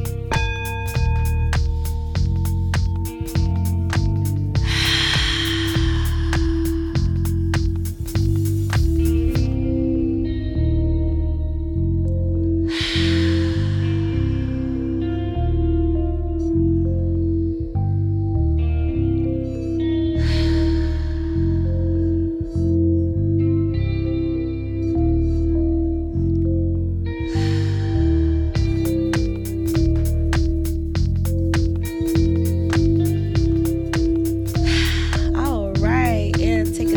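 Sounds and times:
steady droning ambient music bed: 0.0s - 36.9s
slow deep breaths in through the nose and out through the mouth: 4.6s - 9.0s, 12.6s - 14.6s, 20.2s - 22.6s, 34.6s - 35.4s.

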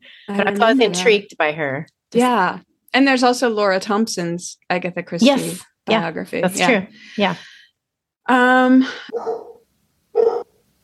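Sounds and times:
speech: 0.3s - 7.5s, 8.3s - 9.5s
dog barking: 9.1s - 10.6s.

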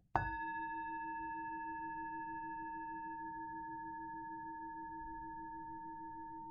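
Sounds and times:
singing bowl struck and ringing: 0.2s - 6.4s.

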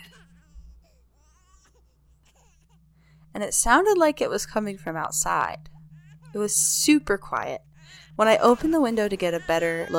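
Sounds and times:
baby crying in short wavering wails: 0.0s - 2.8s, 5.7s - 6.7s, 7.5s - 9.9s
steady low hum: 0.0s - 9.9s
speech: 3.4s - 5.7s, 6.3s - 9.9s.

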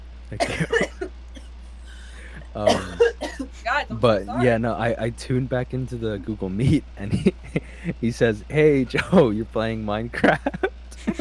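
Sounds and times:
speech: 0.3s - 0.9s, 2.6s - 2.8s, 3.8s - 10.6s
cartoon character coughing violently: 0.4s - 1.1s, 2.5s - 4.5s
cartoon character faint wheeze: 1.8s - 2.6s, 7.6s - 8.0s
laughter: 3.9s - 11.1s.

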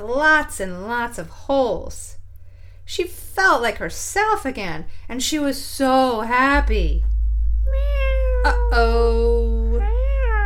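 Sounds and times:
speech: 0.0s - 2.2s, 2.9s - 7.1s, 7.7s - 9.4s
cat meowing: 7.6s - 10.4s.

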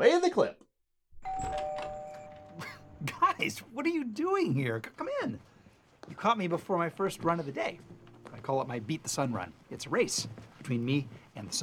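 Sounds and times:
electronic doorbell chime: 1.2s - 3.0s
faint noise: 1.4s - 11.6s
speech: 3.4s - 5.5s, 6.1s - 11.6s.

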